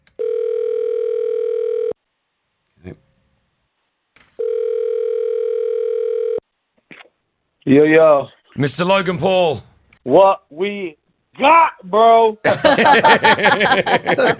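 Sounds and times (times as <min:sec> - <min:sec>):
telephone tone while placing a call: 0:00.2 - 0:02.0, 0:04.4 - 0:06.4
speech: 0:02.8 - 0:03.0, 0:07.7 - 0:14.3
laughter: 0:12.4 - 0:14.3.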